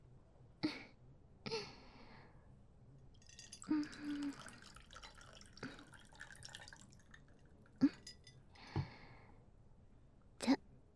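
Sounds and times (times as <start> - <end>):
tequila dripping: 3.1 - 8.4
brief glassy clinks: 3.2 - 8.4
tequila pouring into a glass: 3.2 - 8.4.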